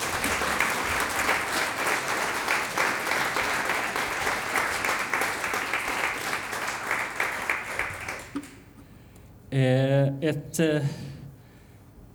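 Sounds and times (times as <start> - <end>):
audience applause for a string quartet at a concert evening: 0.0 - 8.8
speech: 9.5 - 11.1.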